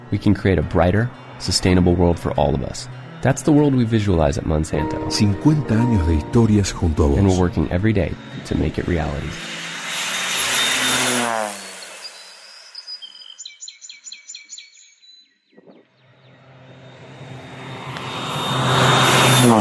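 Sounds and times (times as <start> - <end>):
small propeller plane passing overhead: 0.0 - 13.2, 16.0 - 19.5
speech: 0.1 - 9.6
rapid high chirping bird calls: 11.7 - 15.9.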